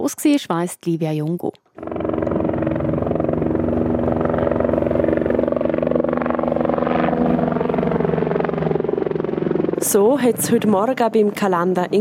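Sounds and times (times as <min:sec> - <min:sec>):
speech: 0:00.0 - 0:01.6, 0:09.9 - 0:12.0
helicopter flying overhead with rotor droning: 0:01.8 - 0:12.0.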